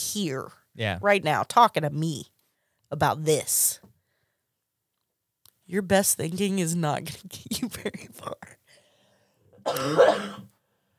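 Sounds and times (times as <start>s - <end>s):
speech: 0.1s - 2.3s, 2.9s - 3.9s, 5.7s - 8.6s, 9.6s - 10.5s
single rough drawn-out raspy cough: 9.6s - 10.5s.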